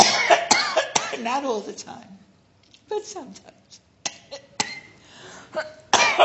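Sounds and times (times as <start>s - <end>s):
person with a persistent cough coughing: 0.0s - 1.3s, 4.1s - 6.2s
speech: 1.4s - 2.3s, 2.9s - 3.6s, 5.5s - 6.2s.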